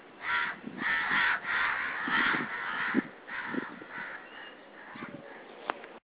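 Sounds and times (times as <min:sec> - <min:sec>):
crow cawing with harsh grating caws: 0:00.2 - 0:05.4.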